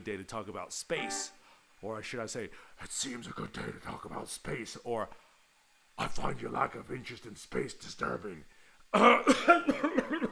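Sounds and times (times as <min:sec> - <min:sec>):
speech: 0:00.0 - 0:05.2, 0:06.0 - 0:10.3
person coughing harshly: 0:09.3 - 0:10.3.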